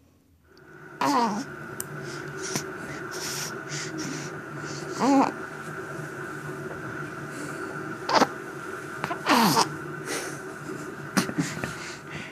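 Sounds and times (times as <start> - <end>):
steady low hum: 0.0 - 12.3
six-week-old baby nasal grunts and breathy squeaks: 8.1 - 8.3, 9.1 - 9.7.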